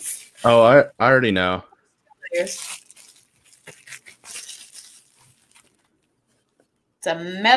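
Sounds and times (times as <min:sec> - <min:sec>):
bubble wrap crinkling while unpacking: 0:00.0 - 0:00.6, 0:02.2 - 0:06.7
speech: 0:00.4 - 0:01.7, 0:02.3 - 0:02.8, 0:07.0 - 0:07.5.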